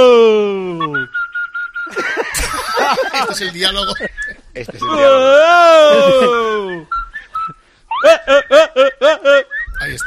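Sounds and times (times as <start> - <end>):
person whistling: 0.6 - 2.0, 6.0 - 7.6, 9.5 - 10.0
laughter: 1.9 - 6.8, 8.0 - 9.5
speech: 2.9 - 7.0, 8.0 - 10.0.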